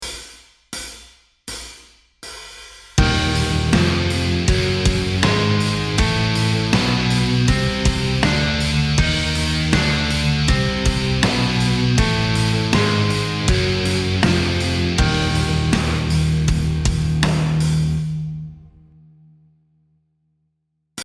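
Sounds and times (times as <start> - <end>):
musical scale in exotic modes: 3.0 - 17.8.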